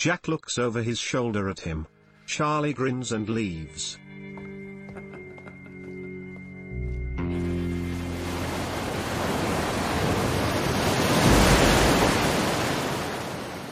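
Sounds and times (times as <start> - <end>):
speech: 0.0 - 4.1
ocean waves by a hill: 7.3 - 13.6.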